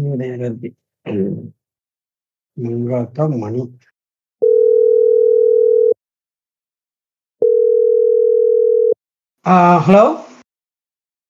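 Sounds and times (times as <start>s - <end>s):
speech: 0.1s - 1.6s, 2.6s - 3.9s, 9.4s - 10.3s
phone ringback tones on outgoing call: 4.4s - 6.0s, 7.4s - 9.0s.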